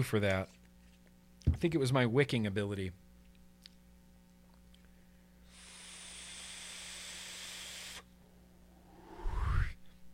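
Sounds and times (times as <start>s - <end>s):
speech: 0.0s - 0.6s, 1.4s - 3.0s
air drawn through a vape mod set at 0.1 on a single 21700 battery: 5.5s - 8.1s, 8.8s - 9.8s
breathy whoosh with a low rumble: 8.7s - 9.9s.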